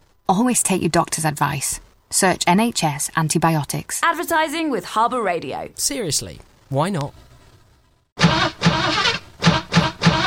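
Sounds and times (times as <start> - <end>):
speech: 0.3 - 7.2
car engine cranking and revving: 8.2 - 10.2.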